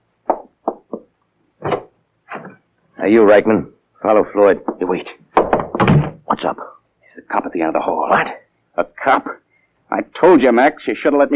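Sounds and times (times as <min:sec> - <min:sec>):
door swinging open with a thud: 0:01.6 - 0:01.9, 0:05.4 - 0:06.3
speech: 0:03.0 - 0:05.2, 0:06.3 - 0:11.3.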